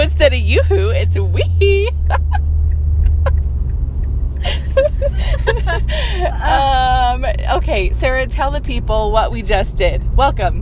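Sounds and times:
car engine and road rumble in a moving car's cabin: 0:00.0 - 0:10.6
people laughing: 0:01.9 - 0:03.4, 0:04.4 - 0:06.5
speech: 0:08.4 - 0:10.6.

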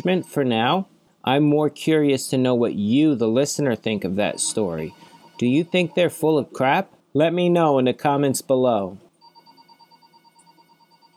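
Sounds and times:
telephone ringing with warbling electronic trill: 0:00.0 - 0:00.8, 0:04.0 - 0:06.6, 0:09.1 - 0:11.1
speech: 0:00.0 - 0:09.0.

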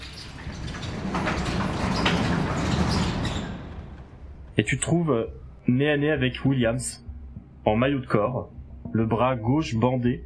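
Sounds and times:
sliding door rolling open with grinding rumble and faint squeaks: 0:00.0 - 0:04.6
speech: 0:04.6 - 0:10.2.

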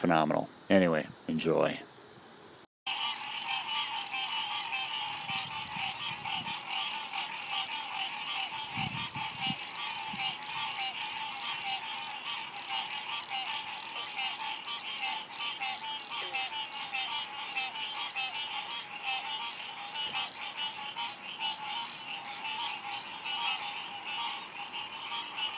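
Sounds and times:
speech: 0:00.0 - 0:01.9
dense chorus of frogs croaking and trilling in many voices: 0:00.0 - 0:25.5.

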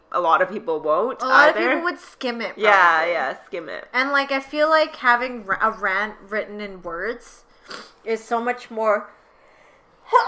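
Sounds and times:
speech: 0:00.2 - 0:09.2, 0:10.1 - 0:10.2
quiet breathy lead-in to a sneeze: 0:09.2 - 0:10.0.

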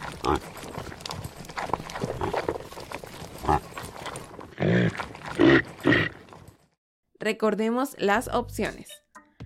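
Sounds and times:
reindeer giving rough throaty grunts: 0:00.0 - 0:06.5
speech: 0:00.2 - 0:00.7, 0:07.3 - 0:09.0.

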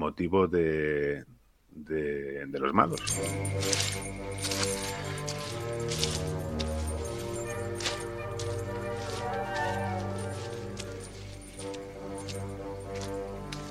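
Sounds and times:
speech: 0:00.1 - 0:05.0
steady pattern of metallic jangling and clinking: 0:02.8 - 0:13.7
sustained low orchestral tones of a tense film-score cue: 0:02.8 - 0:13.7.

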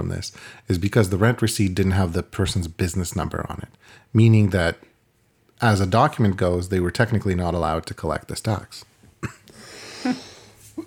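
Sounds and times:
speech: 0:00.0 - 0:04.9, 0:05.6 - 0:09.4, 0:10.0 - 0:10.2
breathing: 0:00.3 - 0:00.7, 0:03.8 - 0:04.1, 0:09.5 - 0:10.7
person coughing: 0:09.2 - 0:10.8.

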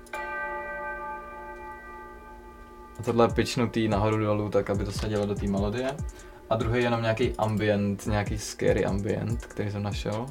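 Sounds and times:
pitched church bell strike: 0:00.0 - 0:05.0
speech: 0:03.0 - 0:10.2.

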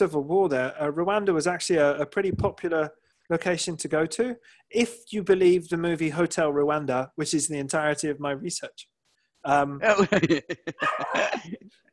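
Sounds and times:
speech: 0:00.0 - 0:11.9
laughter: 0:10.0 - 0:11.6
dog yelping excitedly: 0:10.8 - 0:11.3.

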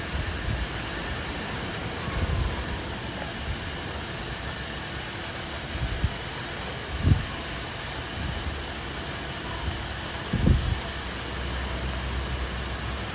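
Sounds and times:
calm rain falling over a city: 0:00.0 - 0:13.1
low rumble of traffic or wind: 0:00.0 - 0:13.1.

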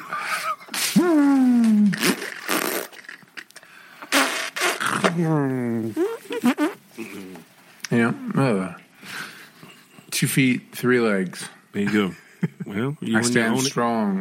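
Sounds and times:
squeaky wavering vocal noises: 0:00.8 - 0:03.2, 0:04.0 - 0:08.4
wet mouth farts blown with the lips: 0:00.8 - 0:03.2, 0:04.1 - 0:05.2, 0:05.9 - 0:07.3
speech: 0:05.2 - 0:06.1, 0:07.9 - 0:08.8, 0:10.2 - 0:14.1.

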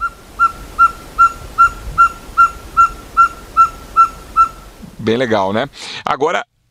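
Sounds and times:
ferruginous pygmy owl calling in whistled toots: 0:00.0 - 0:04.6
faint hiss: 0:00.0 - 0:06.6
speech: 0:05.0 - 0:06.5.

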